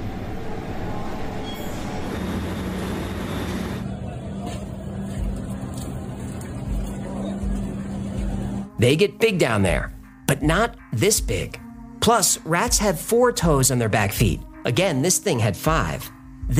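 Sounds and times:
New York City subway F train rumbling: 0.0s - 8.7s
speech: 8.8s - 16.5s.

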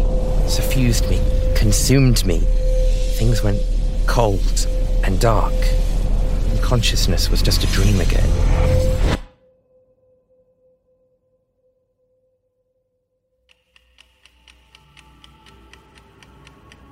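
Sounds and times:
low rumble: 0.0s - 9.3s
speech: 0.5s - 2.6s, 3.2s - 5.9s, 6.6s - 9.1s
wall clock ticking: 13.5s - 16.9s.

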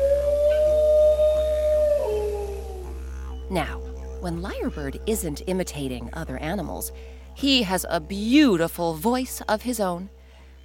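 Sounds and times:
dingo howling: 0.0s - 7.7s
speech: 3.5s - 10.2s.

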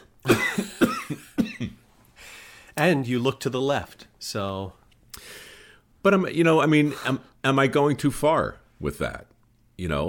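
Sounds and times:
harsh throaty coughs: 0.2s - 1.8s
speech: 2.8s - 4.8s, 6.0s - 10.0s.

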